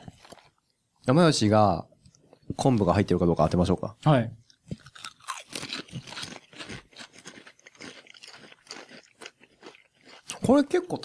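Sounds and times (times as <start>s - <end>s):
speech: 1.1s - 1.9s, 2.5s - 4.4s, 10.5s - 11.0s
crunchy chewing and biting while tasting food: 4.5s - 10.5s.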